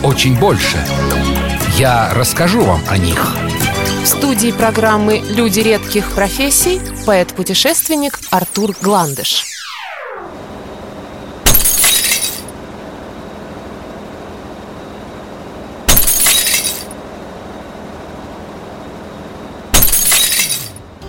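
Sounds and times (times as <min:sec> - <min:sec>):
speech: 0:00.0 - 0:09.5
glass shattering: 0:11.5 - 0:12.5, 0:15.9 - 0:17.0, 0:19.7 - 0:20.8
tinkle of falling glass shards: 0:11.5 - 0:12.5, 0:15.9 - 0:17.0, 0:19.8 - 0:20.8.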